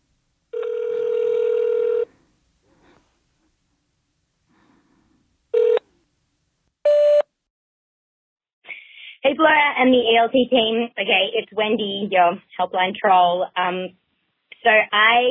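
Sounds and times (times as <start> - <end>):
phone tone as a number is speed-dialed: 0.5 - 2.1, 5.6 - 5.9
speech: 9.3 - 14.0, 14.6 - 15.2.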